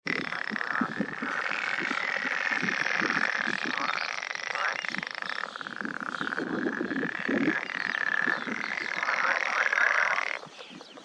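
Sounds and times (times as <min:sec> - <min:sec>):
edible frog chorus croaking: 0:00.0 - 0:11.0.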